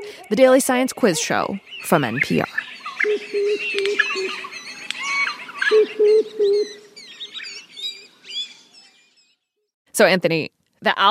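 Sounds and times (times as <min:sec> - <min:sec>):
speech: 0:00.3 - 0:04.5, 0:10.0 - 0:11.0
threatened Australian bird species cooing with low repeated notes: 0:02.2 - 0:08.8.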